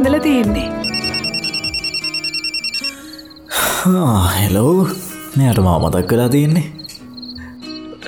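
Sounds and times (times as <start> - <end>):
speech: 0.2 - 0.8, 3.8 - 6.8
landline telephone ringing after a number is dialed: 0.8 - 3.5.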